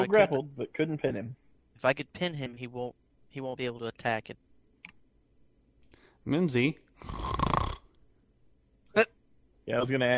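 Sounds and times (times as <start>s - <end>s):
speech: 0.0s - 4.5s, 6.2s - 7.4s, 9.7s - 10.1s
voice imitating a loud rasping snore: 7.0s - 7.8s.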